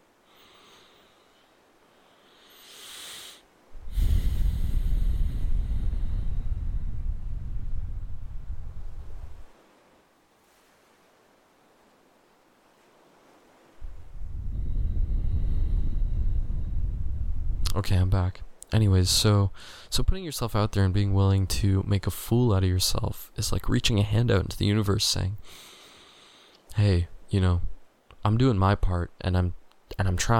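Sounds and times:
slow deliberate conscious breathing: 0:00.1 - 0:09.4, 0:13.8 - 0:17.4, 0:19.6 - 0:19.9, 0:25.4 - 0:26.7
speech: 0:17.8 - 0:25.7, 0:26.8 - 0:30.3.

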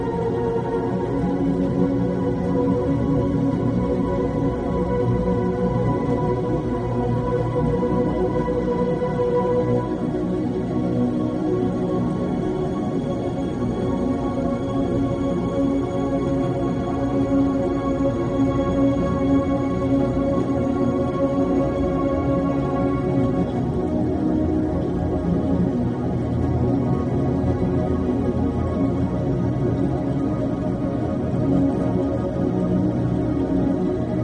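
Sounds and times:
soft slow relaxing sleep music with long held tones and drones: 0:00.0 - 0:34.2.

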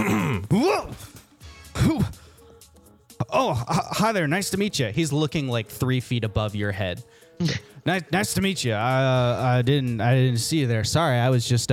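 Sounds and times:
person clearing throat deliberately: 0:00.0 - 0:01.1, 0:01.7 - 0:02.2, 0:03.2 - 0:04.0, 0:07.4 - 0:07.8
speech: 0:03.3 - 0:11.7.

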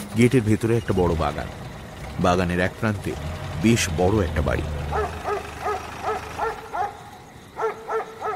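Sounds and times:
speech: 0:00.2 - 0:01.6, 0:02.2 - 0:04.9
dog in a garden barking in a deep voice: 0:04.8 - 0:07.0, 0:07.6 - 0:08.3.

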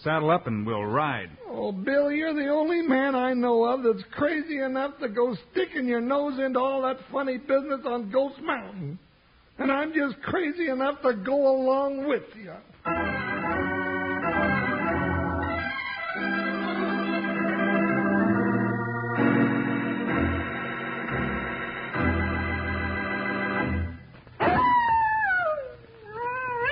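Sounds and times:
speech: 0:00.0 - 0:13.0
layered music: 0:12.9 - 0:24.0
coyote howling: 0:24.4 - 0:26.7.

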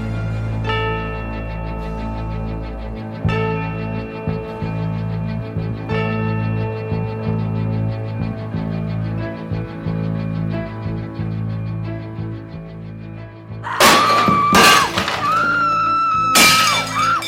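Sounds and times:
low steady rumbling drone: 0:00.0 - 0:13.7
ringing scattering fragments: 0:13.7 - 0:17.2
something smashing and breaking: 0:13.7 - 0:17.2.

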